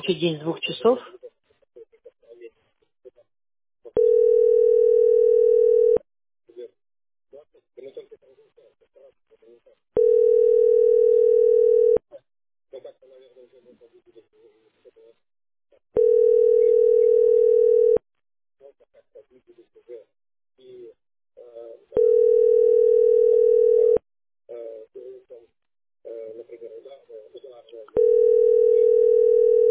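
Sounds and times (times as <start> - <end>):
speech: 0.0 - 1.2
telephone ringback tone: 4.0 - 6.0, 10.0 - 12.0, 16.0 - 18.0, 22.0 - 24.0, 28.0 - 29.6.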